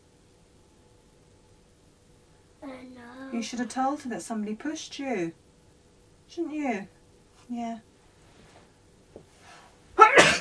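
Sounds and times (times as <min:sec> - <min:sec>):
faint noise: 0:00.0 - 0:10.4
speech: 0:03.3 - 0:05.4, 0:06.3 - 0:07.9
sneeze: 0:10.0 - 0:10.4.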